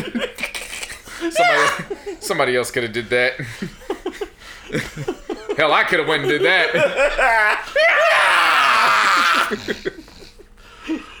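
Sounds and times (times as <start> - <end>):
laughter: 0.0 - 2.6, 3.2 - 11.1
speech: 1.3 - 3.8, 4.7 - 8.0, 9.5 - 9.9
person letting out an exaggerated scream: 1.4 - 1.9, 7.0 - 9.8
quieter breathy vocal bursts: 9.1 - 10.8.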